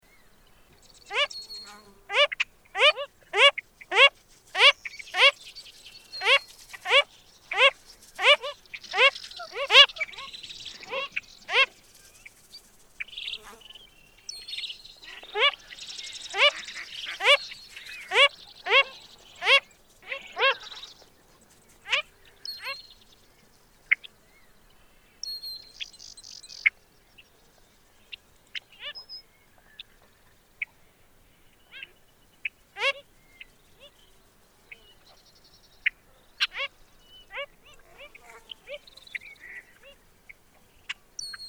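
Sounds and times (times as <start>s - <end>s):
Wilson's phalarope Phalaropus tricolor calling: 0.1s - 12.4s, 13.0s - 23.2s, 31.5s - 41.4s.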